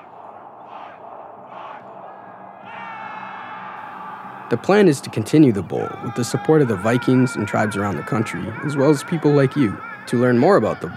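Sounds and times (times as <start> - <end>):
large stadium crowd roaring at a football bowl closing ceremony: 0.0 - 10.9
laughter: 0.0 - 10.9
people shouting and whooping in a stadium: 0.0 - 10.9
speech: 4.5 - 10.9.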